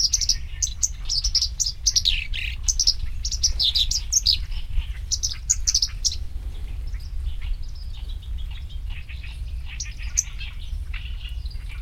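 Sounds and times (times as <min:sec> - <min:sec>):
black-browed reed warbler song with high chattering notes and buzzy dips: 0:00.0 - 0:11.8.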